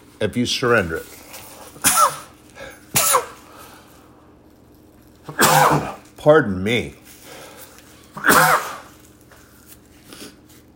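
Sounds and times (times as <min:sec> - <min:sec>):
speech: 0:00.2 - 0:01.2, 0:05.3 - 0:07.0
loud sneeze from a sneezing fit: 0:01.8 - 0:03.5, 0:05.3 - 0:06.1, 0:08.2 - 0:09.0.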